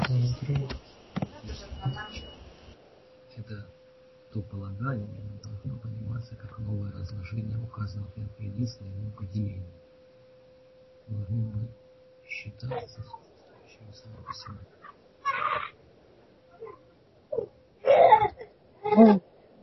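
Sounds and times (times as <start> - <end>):
speech: 0.1 - 0.9, 4.4 - 9.9, 11.1 - 11.8, 12.5 - 14.9
small child whimpering and fussing through an open microphone: 14.9 - 15.7, 17.3 - 19.2.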